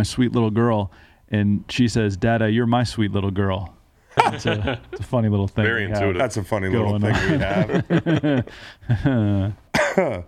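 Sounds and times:
speech: 0:00.0 - 0:10.2
laughter: 0:04.1 - 0:10.2
person clearing throat: 0:09.7 - 0:10.2
person coughing: 0:09.7 - 0:10.2.

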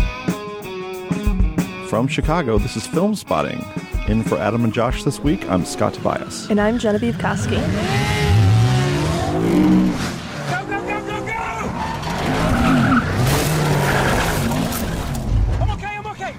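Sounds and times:
speech: 0:01.9 - 0:08.2
roaring, revving car engines: 0:05.2 - 0:16.3
tires screeching in high-speed driving: 0:05.4 - 0:16.3.

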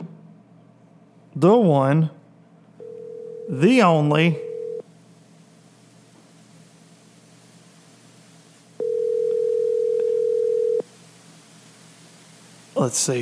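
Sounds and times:
speech: 0:01.4 - 0:02.2, 0:03.5 - 0:04.4, 0:12.8 - 0:13.1
ringback tone of an outgoing telephone call: 0:02.8 - 0:03.6, 0:04.4 - 0:04.8, 0:08.8 - 0:10.8
faint hiss: 0:04.8 - 0:13.1.

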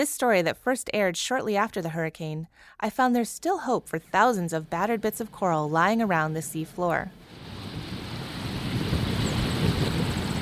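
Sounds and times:
speech: 0:00.0 - 0:07.3
ocean surf on a tall dune on Puerto Rico's north coast: 0:07.1 - 0:10.4
blustery wind buffeting the microphone: 0:07.2 - 0:10.4.

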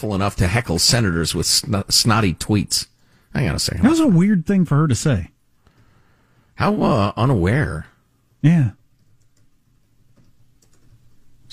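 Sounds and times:
speech: 0:00.0 - 0:05.3, 0:06.6 - 0:08.8
quick light keystrokes on a computer keyboard: 0:08.9 - 0:11.2.

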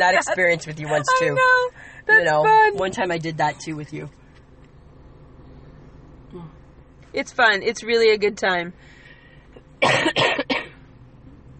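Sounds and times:
speech: 0:00.0 - 0:04.2, 0:06.3 - 0:09.0, 0:09.8 - 0:10.4
harsh coughing: 0:09.8 - 0:10.8.

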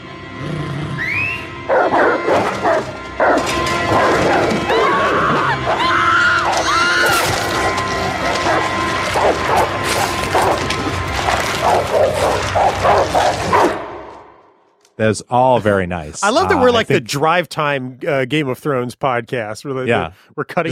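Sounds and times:
several dogs barking, snarling and yelping while attacking: 0:00.3 - 0:14.3
shrill screaming: 0:04.6 - 0:08.2
speech: 0:15.0 - 0:20.7.

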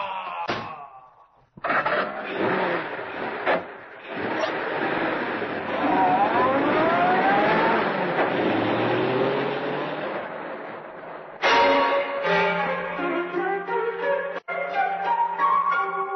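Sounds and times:
car engine revving and pulling away: 0:01.7 - 0:11.4
music: 0:11.4 - 0:16.1.

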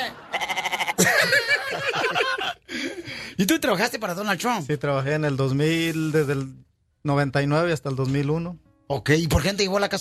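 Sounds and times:
several people laughing loudly: 0:00.0 - 0:02.7
sheep bleating with a quavering tremolo: 0:00.3 - 0:01.0
speech: 0:03.4 - 0:09.9.

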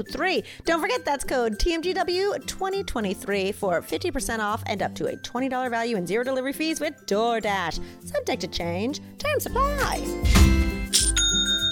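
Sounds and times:
speech: 0:00.0 - 0:10.6
online store sale notification chime: 0:10.9 - 0:11.7.

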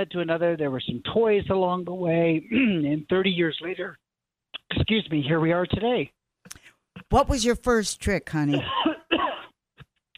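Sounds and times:
speech: 0:00.0 - 0:04.0, 0:04.7 - 0:06.2, 0:07.1 - 0:09.0
rough cough: 0:08.5 - 0:09.6.

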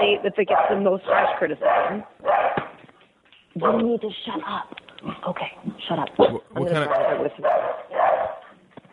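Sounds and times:
speech: 0:00.2 - 0:02.4, 0:03.6 - 0:07.8
female mixed-breed dog barking: 0:00.5 - 0:02.7, 0:06.9 - 0:08.6.

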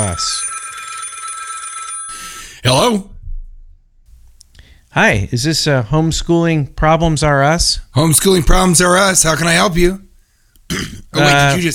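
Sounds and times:
speech: 0:00.0 - 0:00.4, 0:02.7 - 0:03.1, 0:05.0 - 0:10.1, 0:10.7 - 0:11.7
old-fashioned telephone bell ringing with a rapid metallic clatter: 0:00.0 - 0:02.6.

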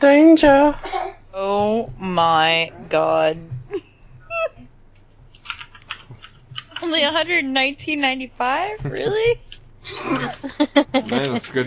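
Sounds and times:
speech: 0:00.0 - 0:03.8, 0:06.8 - 0:11.6
low steady hum: 0:00.0 - 0:11.6
typing on a computer keyboard: 0:05.3 - 0:07.0
laughter: 0:08.8 - 0:11.6.

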